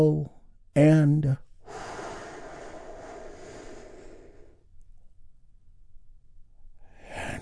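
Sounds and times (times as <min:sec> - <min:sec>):
speech: 0:00.0 - 0:01.8
slow deep breath inhale: 0:01.6 - 0:04.7.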